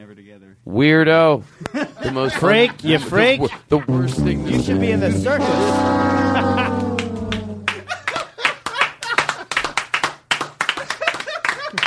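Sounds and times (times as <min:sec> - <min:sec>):
speech: 0:00.2 - 0:06.0
laughter: 0:01.5 - 0:09.7, 0:10.8 - 0:11.8
applause from a small group: 0:07.0 - 0:11.8.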